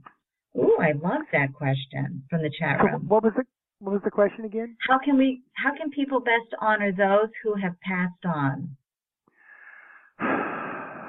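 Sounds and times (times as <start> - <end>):
speech: 0.8 - 8.8
person taking an audible slightly wheezy breath: 9.3 - 11.0.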